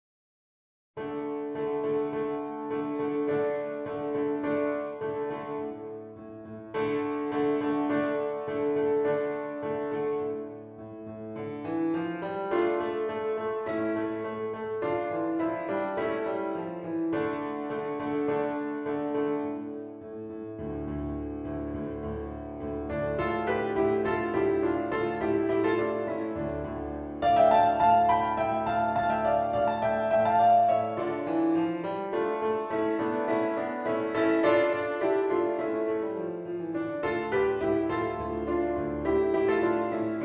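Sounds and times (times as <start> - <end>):
piano accompaniment for SATB choir: 1.0 - 40.2.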